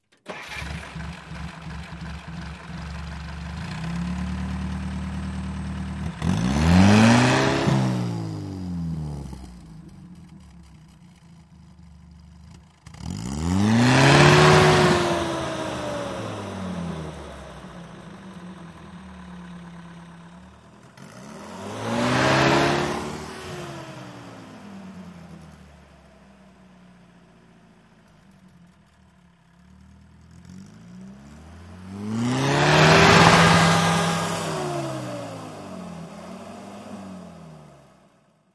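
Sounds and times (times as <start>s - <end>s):
army jeep engine starting: 0.0s - 25.2s, 31.4s - 37.0s.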